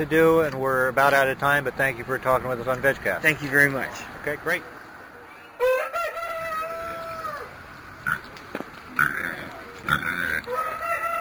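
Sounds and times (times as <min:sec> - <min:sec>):
speech: 0:00.0 - 0:04.8
steady outdoor noise: 0:00.0 - 0:11.1
roosters crowing: 0:05.2 - 0:08.3, 0:08.9 - 0:11.1.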